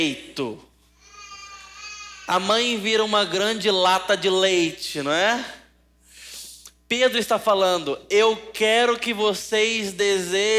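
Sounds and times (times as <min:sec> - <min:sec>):
speech: 0:00.0 - 0:00.7, 0:02.3 - 0:05.6, 0:06.9 - 0:10.5
baby crying: 0:01.0 - 0:02.6.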